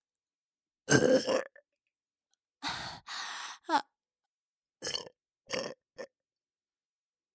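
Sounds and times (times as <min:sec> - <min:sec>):
loud burps: 0:00.9 - 0:01.6, 0:04.8 - 0:06.1.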